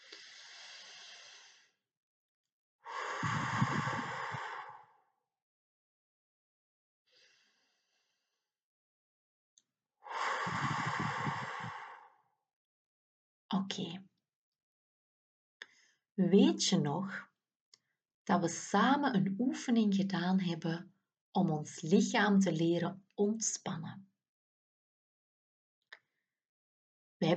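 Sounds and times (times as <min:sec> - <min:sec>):
slow deep breathing during a guided breathing exercise: 0:00.0 - 0:01.8, 0:02.8 - 0:05.1, 0:07.1 - 0:08.3, 0:10.1 - 0:12.2
speech: 0:13.5 - 0:14.1, 0:16.2 - 0:17.3, 0:18.3 - 0:24.1.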